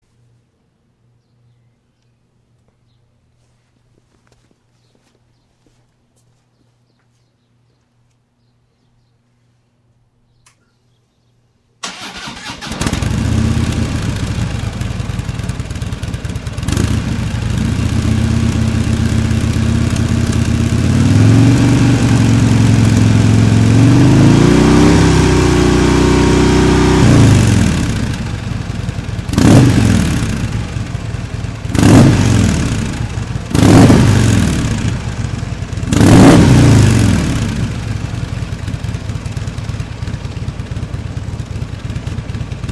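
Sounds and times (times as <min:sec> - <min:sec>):
FLHTK stock exhaust: 0:11.8 - 0:42.7.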